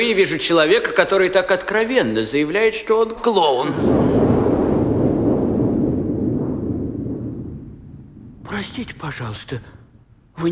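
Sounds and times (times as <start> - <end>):
speech: 0.0 - 4.2, 8.6 - 9.8, 10.4 - 10.5
cannon fire: 3.8 - 9.0.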